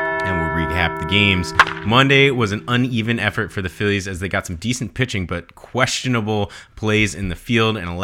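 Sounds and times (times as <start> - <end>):
bell ringing: 0.1 - 4.4
speech: 0.9 - 8.0.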